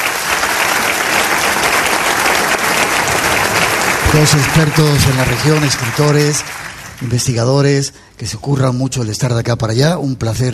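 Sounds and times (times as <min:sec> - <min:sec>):
crowd clapping steadily and loudly: 0:00.0 - 0:07.5
speech: 0:04.2 - 0:10.5.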